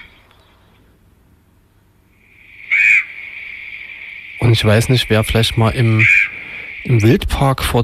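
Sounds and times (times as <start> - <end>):
excited common raven loud harsh call: 2.1 - 7.3
speech: 4.5 - 7.8.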